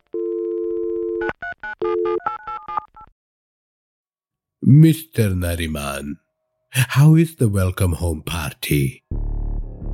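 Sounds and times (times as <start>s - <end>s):
phone dial tone: 0.0s - 3.1s
speech: 4.7s - 9.1s.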